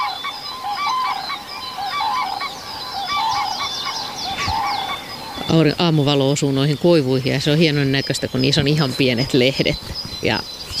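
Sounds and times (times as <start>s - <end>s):
Common Crane calling at dawn over a sunlit reed bed: 0.0s - 10.7s
background hiss: 0.0s - 10.7s
birds chirping: 0.0s - 10.7s
speech: 5.5s - 10.6s.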